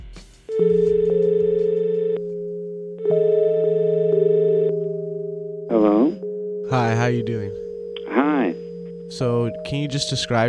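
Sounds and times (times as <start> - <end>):
electronic ringback tones over a phone line: 0.5 - 10.4
speech: 0.6 - 1.1, 6.9 - 7.6, 9.2 - 10.4.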